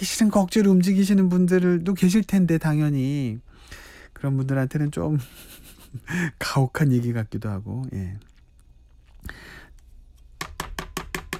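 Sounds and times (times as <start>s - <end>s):
speech: 0.0s - 8.3s
knife chopping food on a cutting board: 10.4s - 11.3s.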